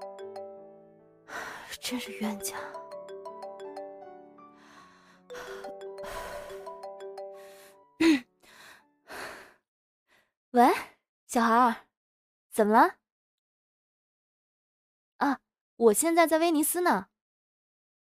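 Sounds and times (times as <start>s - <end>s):
mobile phone ringtone with bright electronic melody: 0.0s - 8.2s
woman gasping: 1.3s - 1.8s, 4.6s - 9.6s
speech: 1.8s - 2.8s, 11.3s - 11.8s, 12.6s - 13.0s, 15.2s - 17.1s
woman sighing: 4.6s - 6.8s, 7.4s - 9.3s.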